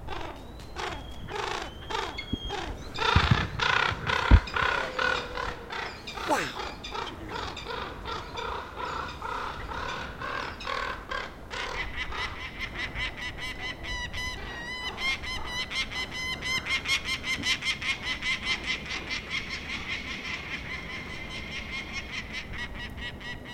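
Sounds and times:
peregrine falcons calling at a raven: 0:00.0 - 0:23.5.

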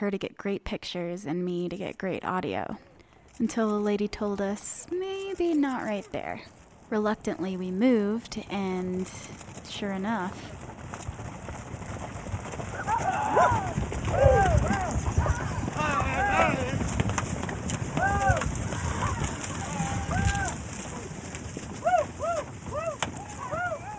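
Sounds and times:
speech: 0:00.0 - 0:10.6
herd of ranch horses galloping in Maybell Colorado: 0:01.6 - 0:23.9
voices shouting: 0:12.7 - 0:17.0, 0:17.8 - 0:23.9
cowboys calling out: 0:12.8 - 0:16.9, 0:17.9 - 0:21.2, 0:21.8 - 0:23.9.

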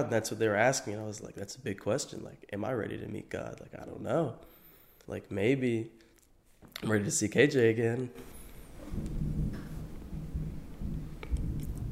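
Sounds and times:
speech: 0:00.0 - 0:04.5, 0:05.1 - 0:06.0, 0:06.7 - 0:09.3
deep rolling rumble of thunder: 0:08.8 - 0:11.9.

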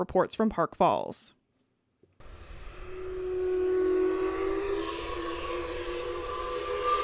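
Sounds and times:
speech: 0:00.0 - 0:01.4
century-old paper mill steam whistle blast: 0:02.2 - 0:07.0.

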